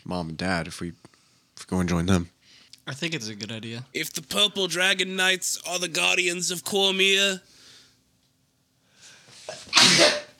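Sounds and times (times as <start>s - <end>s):
speech: 0.0s - 7.6s
person sneezing: 9.5s - 10.3s.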